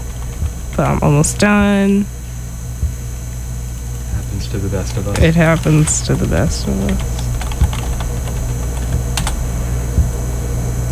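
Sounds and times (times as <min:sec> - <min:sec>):
low hum: 0:00.0 - 0:10.8
speech: 0:00.8 - 0:02.2, 0:04.4 - 0:07.2
typing on a computer keyboard while logging in: 0:06.7 - 0:09.4.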